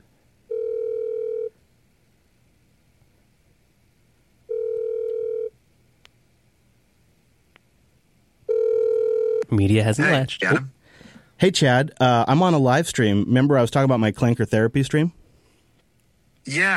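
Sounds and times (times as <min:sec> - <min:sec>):
faint hiss: 0:00.0 - 0:16.7
outgoing phone call ringback tone beeps: 0:00.5 - 0:01.5, 0:04.5 - 0:05.5, 0:08.5 - 0:09.5
speech: 0:09.6 - 0:10.8, 0:11.4 - 0:15.2, 0:16.4 - 0:16.7.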